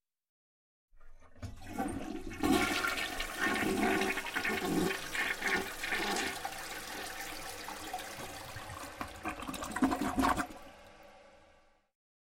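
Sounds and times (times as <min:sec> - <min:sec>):
toilet flushing with rushing water: 0:01.0 - 0:11.7
toilet cistern refill water trickle: 0:01.4 - 0:11.2.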